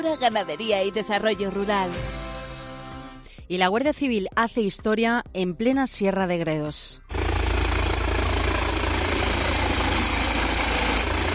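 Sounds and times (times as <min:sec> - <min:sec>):
speech: 0:00.0 - 0:02.2, 0:03.5 - 0:07.1
helicopter droning with heavy low-end vibration: 0:07.1 - 0:11.3.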